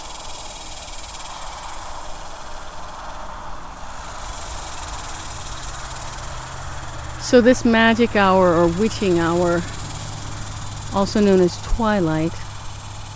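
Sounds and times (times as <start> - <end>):
chorus of cicadas buzzing in a tree: 0.0 - 13.1
speech: 7.3 - 9.8, 10.9 - 12.4.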